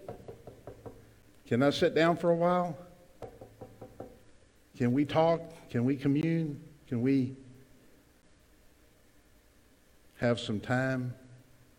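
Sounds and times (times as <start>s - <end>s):
knocking on a door: 0.0s - 1.1s, 3.2s - 4.2s
faint room hum: 0.0s - 11.7s
speech: 1.5s - 2.8s, 4.8s - 7.4s, 10.2s - 11.2s.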